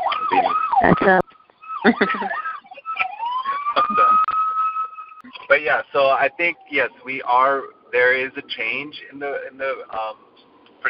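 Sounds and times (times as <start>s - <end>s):
emergency vehicle siren wailing outside: 0.0s - 10.8s
speech: 0.8s - 2.4s, 5.7s - 10.8s
laughter: 1.8s - 4.3s.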